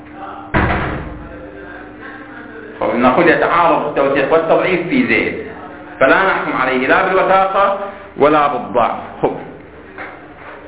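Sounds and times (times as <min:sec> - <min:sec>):
lingering hum: 0:00.0 - 0:10.6
door shutting with a solid thud: 0:00.5 - 0:01.2
speech: 0:02.8 - 0:09.4.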